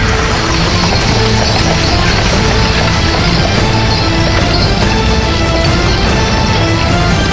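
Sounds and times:
horse hooves clip-clopping: 0:00.0 - 0:07.3.

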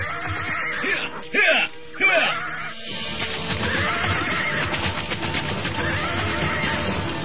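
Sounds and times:
horse giving loud shrill whinnies: 0:00.0 - 0:01.2, 0:02.0 - 0:02.9, 0:03.5 - 0:05.0, 0:05.6 - 0:07.1.

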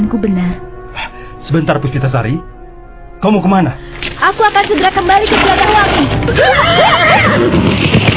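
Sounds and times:
speech: 0:00.1 - 0:00.7, 0:01.5 - 0:02.6, 0:03.2 - 0:08.0
horse neighing as its rider spurs it into the night along a forest edge: 0:06.2 - 0:07.8.

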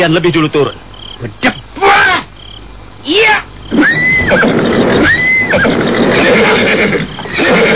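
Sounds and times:
speech: 0:00.0 - 0:02.0, 0:03.0 - 0:07.6
steady rumble of noise: 0:03.3 - 0:07.7
horse neighing: 0:03.7 - 0:07.7.

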